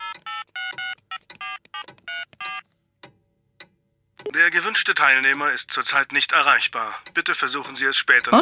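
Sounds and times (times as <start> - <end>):
electronic keypad tones of a mobile phone being dialed: 0.0 - 2.7
speech: 4.2 - 8.4.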